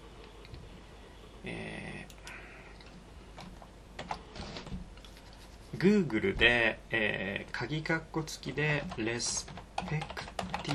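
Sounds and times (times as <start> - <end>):
speech: 1.4 - 1.7, 5.8 - 10.7
fingers typing a search query on a computer keyboard: 8.8 - 10.7.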